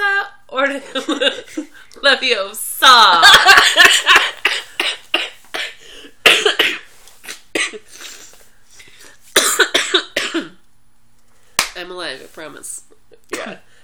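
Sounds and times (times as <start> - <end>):
speech: 0.6 - 4.4, 12.4 - 13.6
person coughing: 4.1 - 8.3, 9.4 - 10.6, 13.3 - 13.7.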